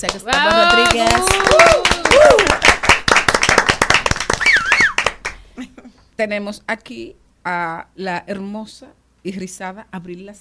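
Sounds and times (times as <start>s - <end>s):
speech: 0.0s - 2.5s, 6.2s - 10.4s
audience applauding to welcome performers: 0.0s - 5.4s
rising whoops and cheers: 0.4s - 2.7s, 4.3s - 5.1s.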